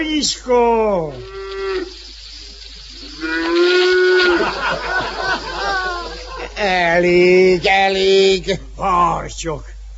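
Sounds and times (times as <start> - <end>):
speech: 0.0 - 2.0, 6.6 - 9.7
cow mooing: 1.2 - 2.0, 3.2 - 4.4
laughter: 4.2 - 6.7.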